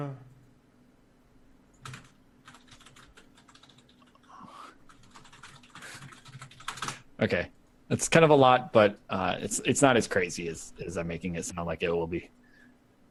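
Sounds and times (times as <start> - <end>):
several people typing on computer keyboards: 1.7 - 7.1
speech: 7.2 - 12.4.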